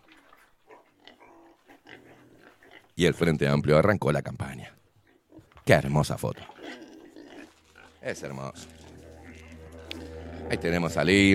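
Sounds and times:
pig grunting and snorting: 0.0 - 3.3, 5.0 - 11.3
speech: 3.0 - 4.8, 5.6 - 6.8, 8.0 - 8.8, 10.5 - 11.3.

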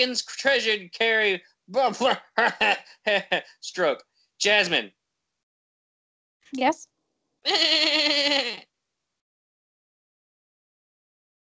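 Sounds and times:
laughter: 0.0 - 4.8
speech: 0.0 - 5.0, 6.5 - 8.7
single sheep bleating: 7.4 - 8.6.

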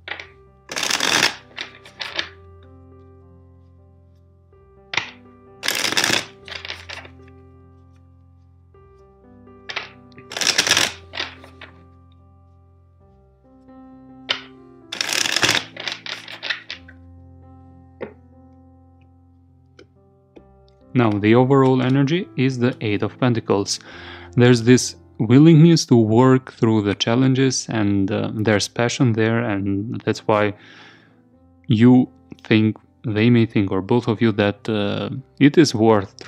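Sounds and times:
shuffling a deck of tarot cards: 0.0 - 2.4, 5.0 - 7.2, 9.7 - 11.8, 14.3 - 17.0
speech: 21.0 - 30.9, 31.7 - 36.2.

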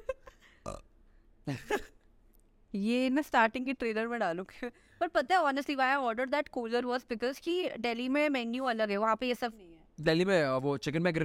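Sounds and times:
person burping into a microphone: 0.5 - 0.9
speech: 1.5 - 2.0, 2.7 - 11.2.

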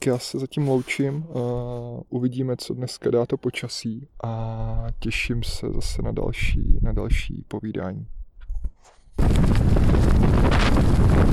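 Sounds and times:
speech: 0.0 - 8.2, 9.2 - 10.0
strong wind buffeting the microphone: 4.6 - 7.4, 8.1 - 11.3.

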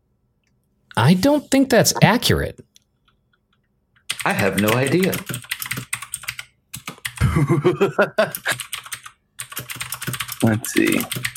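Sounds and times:
speech: 1.0 - 2.7, 4.2 - 5.5, 7.4 - 8.6, 10.4 - 11.3
rapid typing on a computer keyboard: 3.0 - 7.2, 8.2 - 11.3
laughter: 7.2 - 8.4.

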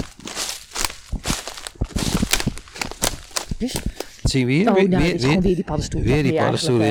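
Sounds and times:
footsteps crunching along a forest path at a walking pace: 0.0 - 5.3
speech: 3.6 - 6.9.

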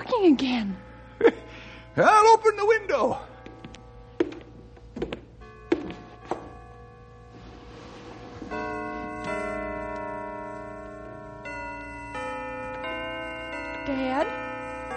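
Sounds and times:
church bells being played: 0.0 - 14.9
speech: 0.2 - 1.4, 2.0 - 3.3.

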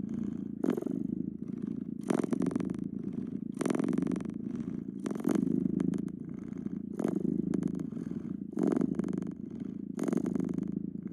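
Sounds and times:
domestic cat purring: 0.0 - 11.1.

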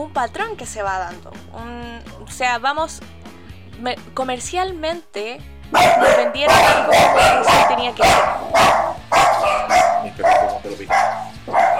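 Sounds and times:
speech: 0.0 - 3.2, 3.8 - 8.8
white dog barking: 5.7 - 11.7.

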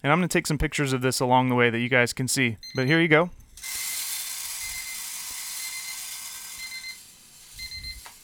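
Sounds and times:
speech: 0.0 - 3.8
faint mechanical whine: 3.4 - 8.2
green coffee beans pouring into a drum roaster: 3.6 - 8.2.

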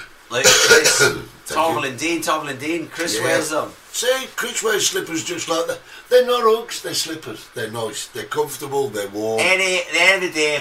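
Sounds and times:
speech: 0.3 - 10.5
person coughing: 0.4 - 1.3.

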